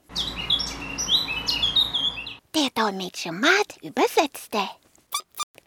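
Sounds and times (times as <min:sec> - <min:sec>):
two blackbirds chirping and warbling: 0:00.0 - 0:02.4
speech: 0:02.8 - 0:04.8.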